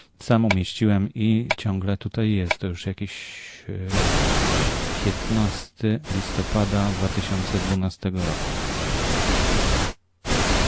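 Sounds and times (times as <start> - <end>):
speech: 0.2 - 8.8
stereo channel broadband test noise: 3.9 - 10.6.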